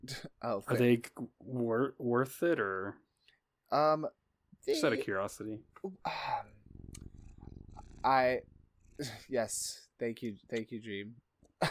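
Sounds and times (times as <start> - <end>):
speech: 0.0 - 3.0, 3.7 - 6.6, 8.0 - 11.6
cat purring in a steady low rumble: 6.2 - 10.6.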